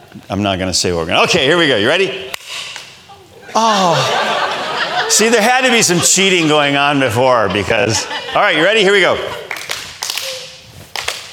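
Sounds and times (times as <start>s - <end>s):
speech: 0.1s - 2.4s, 3.6s - 4.3s, 5.1s - 9.4s
laughter: 3.1s - 10.6s
sparse clapping from a small audience: 8.3s - 11.3s.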